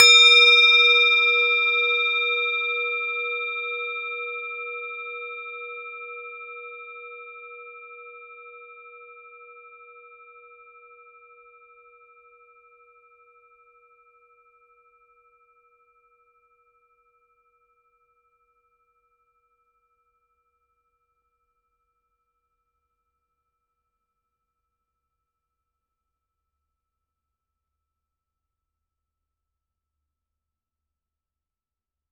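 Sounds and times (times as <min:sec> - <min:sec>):
singing bowl: 0:00.0 - 0:16.6.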